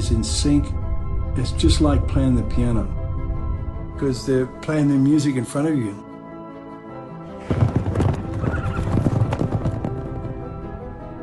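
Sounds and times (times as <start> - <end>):
speech: 0.1 - 0.8, 1.4 - 3.0, 4.0 - 6.0
horses' hooves clip-clopping: 7.4 - 10.5.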